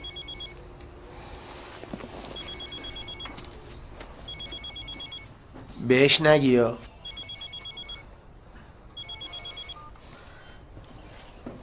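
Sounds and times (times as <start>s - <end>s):
telephone ringing with electronic trilling beeps: 0.0s - 0.6s, 2.3s - 3.5s, 4.3s - 5.4s, 6.8s - 8.1s, 9.0s - 10.0s
steady noise: 0.0s - 11.6s
speech: 5.8s - 6.9s.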